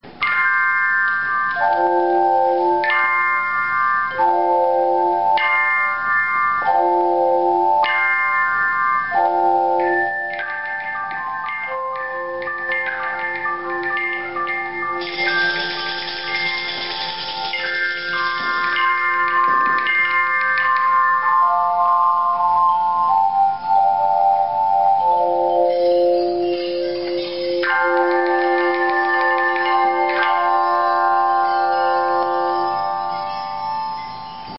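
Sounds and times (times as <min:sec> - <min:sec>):
Pentecost church bell peal: 0:00.2 - 0:34.5.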